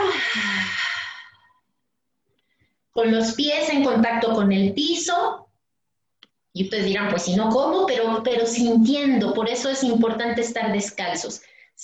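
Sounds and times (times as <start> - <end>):
deep breathy exhalation through the mouth: 0.0 - 1.6
speech: 3.0 - 5.4, 6.6 - 11.8.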